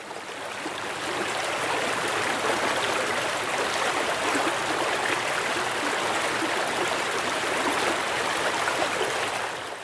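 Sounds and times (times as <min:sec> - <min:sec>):
small river rushing water: 0:00.0 - 0:09.8.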